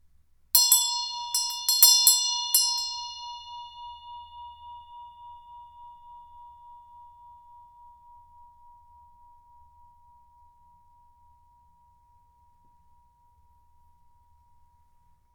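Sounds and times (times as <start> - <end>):
Tibetan bell: 0.6 - 15.3.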